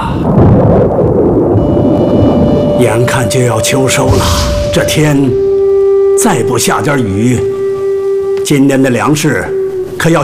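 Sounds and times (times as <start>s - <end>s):
deep rolling thunder rumbling before rain: 0.0s - 7.8s
speech: 2.9s - 5.4s, 6.2s - 7.6s, 8.5s - 10.2s.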